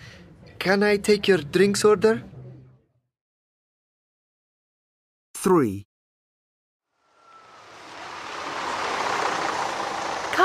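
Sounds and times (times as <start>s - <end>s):
speech: 0.6s - 2.3s, 5.4s - 5.9s
school bus arriving with a broad rushing hiss: 7.0s - 10.4s.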